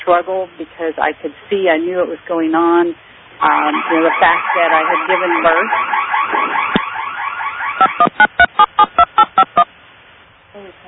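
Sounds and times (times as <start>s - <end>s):
speech: 0.1s - 6.6s, 7.8s - 8.6s
alarm system touch-tone beeps over a tinny phone line: 7.8s - 9.7s.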